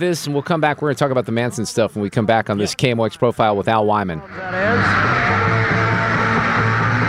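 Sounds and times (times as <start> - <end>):
speech: 0.0 - 6.0
concert crowd shouting and screaming at the Hollywood Bowl: 4.3 - 7.0
faint music of a band performing on stage: 4.3 - 7.0.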